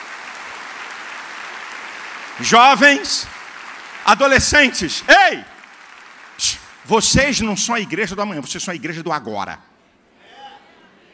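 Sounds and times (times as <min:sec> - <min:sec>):
audience applause at a church service: 0:00.0 - 0:08.5
speech: 0:02.4 - 0:03.4, 0:04.0 - 0:05.5, 0:06.4 - 0:09.7.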